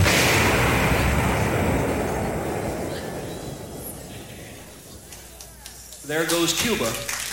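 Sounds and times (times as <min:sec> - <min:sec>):
loud explosion: 0:00.0 - 0:05.1
speech: 0:06.1 - 0:07.2.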